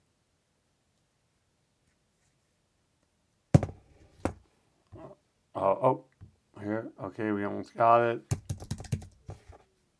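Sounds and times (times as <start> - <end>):
speech: 5.6 - 6.1, 6.7 - 8.4
typing on a computer keyboard: 8.3 - 9.4.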